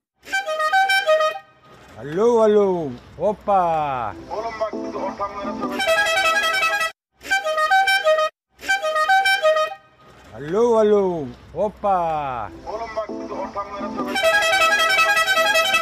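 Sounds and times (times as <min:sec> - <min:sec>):
loud homemade horns blaring with siren-like pitch bends: 0:00.2 - 0:01.8, 0:05.3 - 0:10.2, 0:12.4 - 0:15.8
speech: 0:02.0 - 0:06.2, 0:10.4 - 0:14.6.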